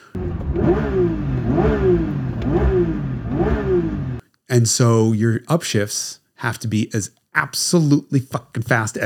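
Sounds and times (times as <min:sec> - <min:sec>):
Porsche 911 S/T engine revving from idle to redline: 0:00.1 - 0:04.2
speech: 0:04.6 - 0:09.0.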